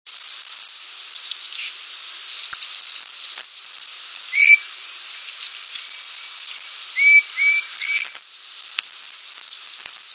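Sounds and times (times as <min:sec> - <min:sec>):
pair of tufted titmice singing in early spring: 0:04.3 - 0:04.6, 0:07.0 - 0:08.2.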